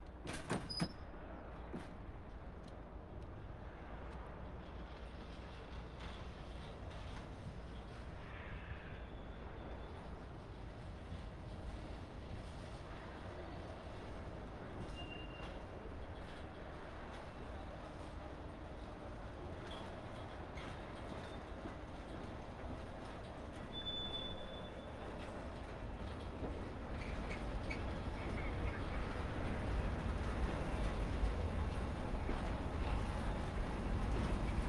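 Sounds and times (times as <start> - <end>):
cargo train tank car passing slowly close in port railroad yard: 1.1 - 34.6
shunting squeal in port railroad yard: 23.7 - 24.9.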